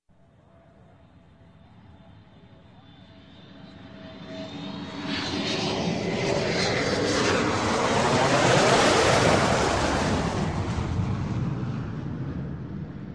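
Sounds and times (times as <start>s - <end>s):
airplane engine droning: 0.2s - 13.1s.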